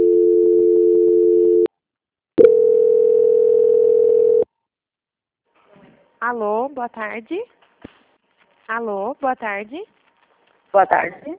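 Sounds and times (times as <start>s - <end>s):
telephone line tones during a call transfer: 0.0s - 1.7s, 2.4s - 4.4s
speech: 6.3s - 7.6s, 8.7s - 10.0s, 10.7s - 11.3s.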